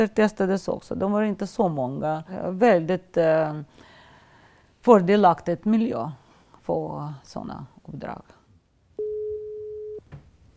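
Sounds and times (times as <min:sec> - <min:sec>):
speech: 0:00.0 - 0:03.9, 0:04.8 - 0:08.4
telephone ringing tone while placing a call: 0:09.0 - 0:10.0.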